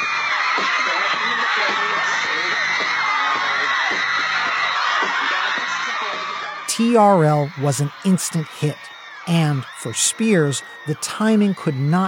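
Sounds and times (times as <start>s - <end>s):
dense crowd of young voices shrieking and screaming: 0.0s - 6.6s
speech: 0.6s - 0.9s, 1.5s - 3.0s, 6.8s - 12.0s.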